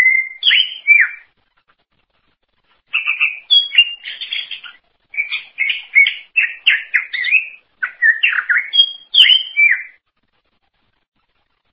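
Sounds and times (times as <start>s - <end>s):
Greater green leafbird song of quick slurred whistles and chattering: 0.0s - 1.3s, 2.9s - 10.0s.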